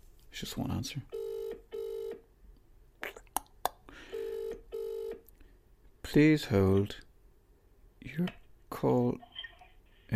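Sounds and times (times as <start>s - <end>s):
speech: 0.4s - 1.2s, 6.1s - 7.1s, 8.0s - 9.3s
phone ringback tone through a speaker: 1.1s - 2.2s, 4.1s - 5.2s.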